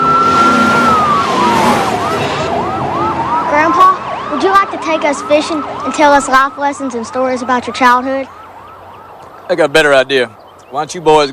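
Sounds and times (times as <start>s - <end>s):
car engines roaring: 0.0s - 11.3s
police car siren wailing: 0.0s - 11.3s
road noise: 0.0s - 11.3s
speech: 4.9s - 8.4s, 9.5s - 11.3s.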